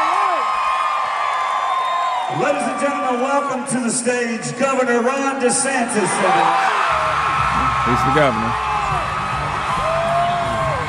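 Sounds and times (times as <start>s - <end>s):
large crowd cheering and whooping at a Florida fundraising event: 0.0s - 3.6s, 6.0s - 10.8s
speech: 2.3s - 9.1s.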